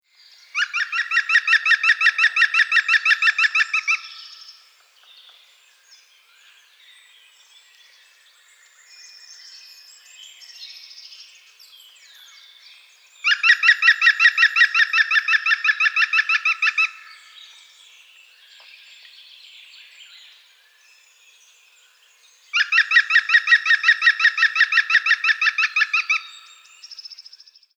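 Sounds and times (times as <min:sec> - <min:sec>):
Picus viridis: 0:00.5 - 0:04.7, 0:13.2 - 0:17.6, 0:22.5 - 0:27.3.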